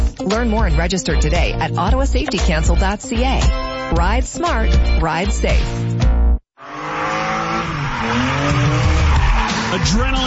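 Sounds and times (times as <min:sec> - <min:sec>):
speech: 0:00.2 - 0:06.0, 0:09.7 - 0:10.2
stock car engine roar on a stadium circuit: 0:06.6 - 0:10.2
stock car tires squealing while skidding around a stadium circuit: 0:06.6 - 0:10.2.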